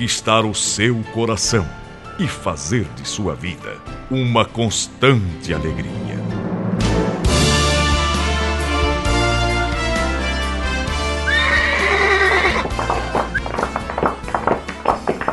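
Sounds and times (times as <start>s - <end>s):
speech: 0.0s - 6.3s
music playing: 0.0s - 15.3s
horse whinnying: 11.2s - 13.9s
hooves clip-clopping: 11.8s - 15.3s.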